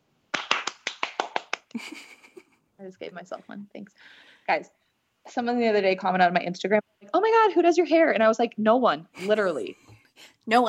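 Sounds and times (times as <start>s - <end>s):
one person clapping hands: 0.3s - 1.8s
speech: 1.7s - 2.2s, 2.8s - 10.6s.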